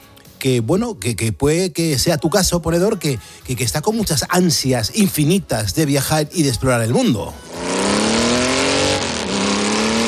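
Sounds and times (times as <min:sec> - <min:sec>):
speech: 0:00.4 - 0:07.7
motorcycle engine revving: 0:07.4 - 0:10.0.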